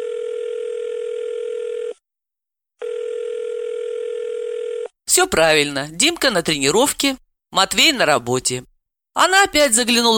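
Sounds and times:
telephone ringing tone on an unanswered call: 0.0 - 2.0, 2.8 - 4.9
speech: 5.2 - 10.1.

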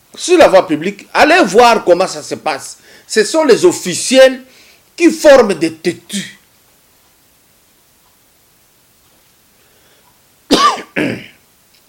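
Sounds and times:
speech: 0.2 - 6.4
person coughing: 10.5 - 11.4.

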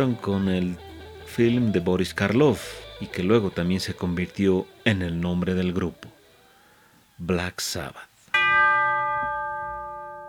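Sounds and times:
speech: 0.0 - 6.2, 7.2 - 8.1
bell toll added to the intro of a heavy metal song: 8.4 - 10.2.

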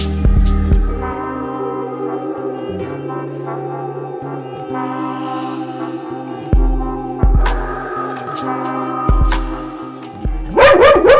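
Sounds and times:
steady low hum: 0.0 - 10.6
dog barking: 10.5 - 11.1.

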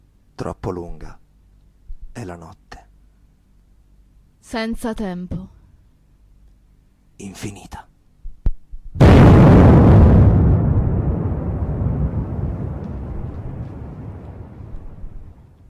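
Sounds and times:
speech: 0.4 - 1.2, 2.2 - 2.6, 4.4 - 5.6, 7.2 - 7.8
bomb explosion boom with rumbling decay: 9.0 - 15.5.

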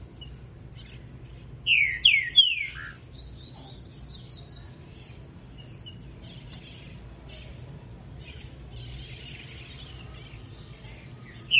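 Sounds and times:
green-winged saltator singing while warming up: 1.7 - 3.0.

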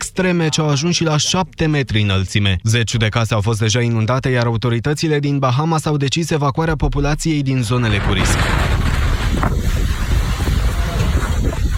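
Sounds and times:
speech: 0.2 - 9.5
hurricane winds roaring at up to 300 km/h in the Bahamas: 7.7 - 11.7.

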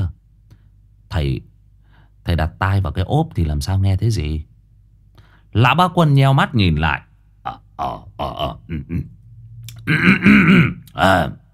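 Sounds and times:
speech: 1.2 - 1.5, 2.2 - 4.5, 5.5 - 9.2, 9.8 - 11.4
old man clearing his throat: 7.5 - 9.1, 9.7 - 11.0.

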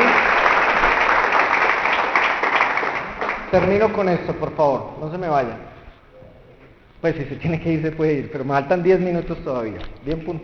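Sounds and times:
audience applause during a religious sermon: 0.0 - 3.9
speech: 3.5 - 5.7, 7.0 - 10.4.

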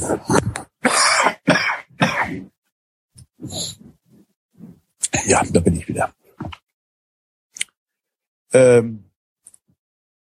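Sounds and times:
speech: 0.1 - 0.5, 5.3 - 6.2, 8.5 - 9.1
harsh throat clearing and coughing from someone with a cold: 0.8 - 2.6.

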